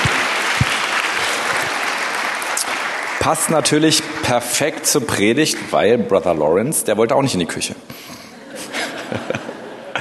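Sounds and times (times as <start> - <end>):
audience applause: 0.0 - 4.6
speech: 3.2 - 8.0
laughter: 8.2 - 9.9.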